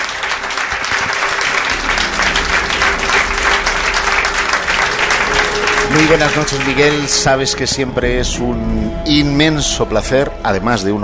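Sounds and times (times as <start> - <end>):
studio audience applause: 0.0 - 8.0
speech: 6.0 - 11.0.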